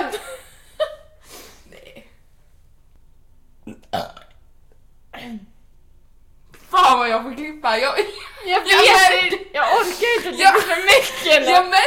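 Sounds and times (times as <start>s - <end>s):
person burping loudly: 3.6s - 4.4s
speech: 7.1s - 11.8s.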